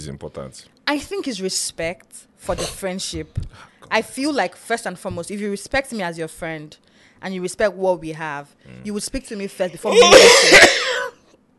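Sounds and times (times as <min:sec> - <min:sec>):
speech: 0:00.0 - 0:10.9
person coughing: 0:02.5 - 0:02.8, 0:09.9 - 0:11.2.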